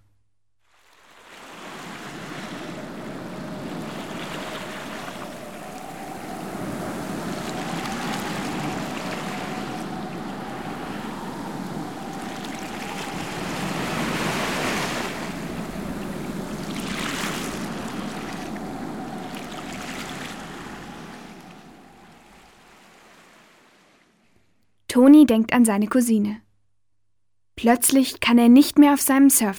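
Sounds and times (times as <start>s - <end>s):
ocean surf breaking on a beach: 0.7s - 24.4s
strong wind on a beach: 1.4s - 23.6s
speech: 25.0s - 26.4s, 27.6s - 29.5s.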